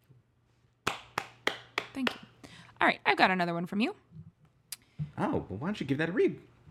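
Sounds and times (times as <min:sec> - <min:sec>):
hand claps: 0:00.8 - 0:02.3
speech: 0:02.0 - 0:04.1, 0:05.2 - 0:06.5.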